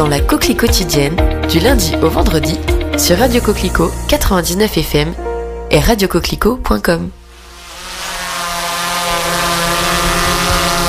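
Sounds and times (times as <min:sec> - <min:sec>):
speech: 0:00.0 - 0:07.2
drone propellers buzzing in flight over painted churches: 0:07.3 - 0:10.8.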